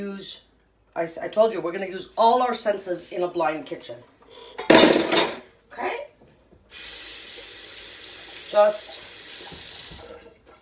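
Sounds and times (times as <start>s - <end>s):
speech: 0.0s - 5.2s, 5.8s - 6.1s, 8.5s - 9.1s
running tap water rinsing cream off fingers at a kitchen sink: 6.6s - 10.5s.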